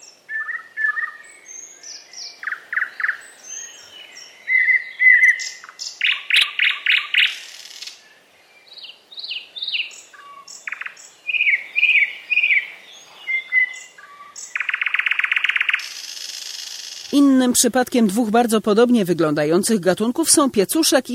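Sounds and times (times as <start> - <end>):
thrush nightingale singing varied whistled phrases and rattling trills: 0.0 - 19.8
speech: 17.2 - 21.1.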